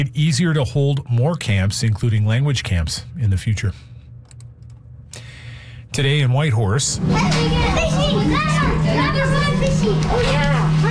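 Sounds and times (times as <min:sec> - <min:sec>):
speech: 0:00.0 - 0:03.9, 0:06.0 - 0:10.8
steady low hum: 0:00.0 - 0:10.8
about a dozen children exclaiming in excitement at a Chinook salmon: 0:07.0 - 0:10.8.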